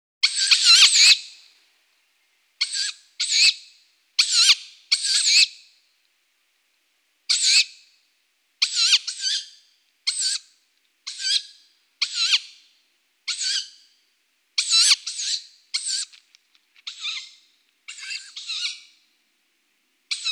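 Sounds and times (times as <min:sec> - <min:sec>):
Strix aluco chicks calling: 0:00.2 - 0:01.4, 0:02.6 - 0:05.6, 0:07.3 - 0:07.8, 0:08.6 - 0:10.5, 0:11.1 - 0:12.5, 0:13.3 - 0:13.8, 0:14.6 - 0:16.2, 0:16.8 - 0:19.0.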